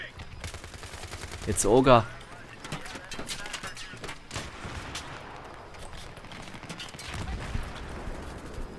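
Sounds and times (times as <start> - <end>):
dense noisy video game soundscape: 0.0 - 8.7
gunfire in a video game: 0.1 - 2.0, 3.9 - 8.7
speech: 1.5 - 2.2.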